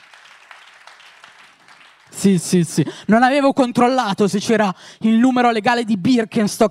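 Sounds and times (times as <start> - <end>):
crowd applauding: 0.0 - 2.6
speech: 2.2 - 6.7.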